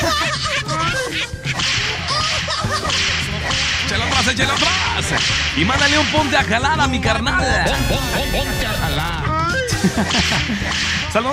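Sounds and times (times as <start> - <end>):
laughter: 0.0 - 5.2, 5.8 - 11.3
busy background of music-like tones: 1.1 - 11.3
speech: 4.4 - 9.2, 9.8 - 11.3
whip cracks: 4.5 - 6.2, 10.1 - 11.1.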